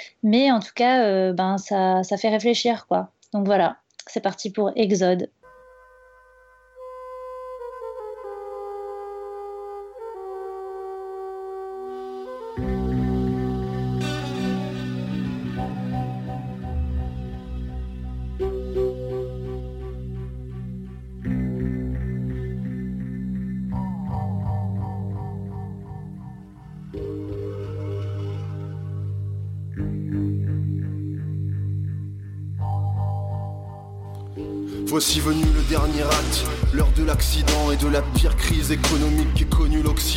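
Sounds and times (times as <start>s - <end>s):
speech: 0.0s - 5.4s, 35.0s - 40.1s
loud music track with deep sustained bass and layered instruments: 12.6s - 40.1s.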